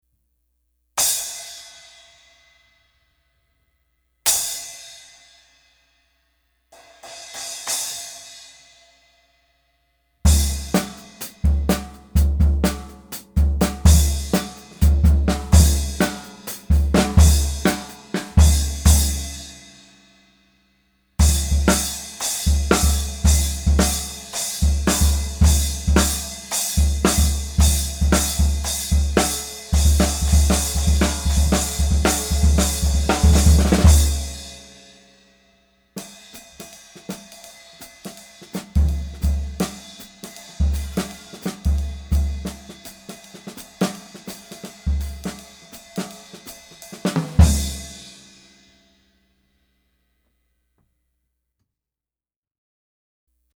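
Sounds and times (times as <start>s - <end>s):
11-inch prototype cymbal: 4.3s - 6.2s, 6.8s - 9.2s, 10.3s - 20.2s, 21.2s - 48.9s.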